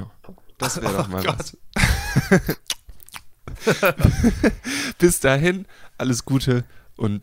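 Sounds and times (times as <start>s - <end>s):
speech: 0.3s - 2.7s, 3.6s - 7.2s
laughter: 0.6s - 2.6s, 3.5s - 4.9s
sharp sticky mouth clicks: 2.6s - 3.3s
smacking and chewing while eating fruit quark: 2.6s - 3.3s.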